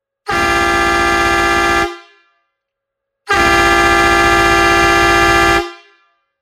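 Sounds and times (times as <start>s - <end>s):
12V 24V chrome two-tone truck fanfare horn: 0.3s - 2.2s, 3.3s - 6.0s.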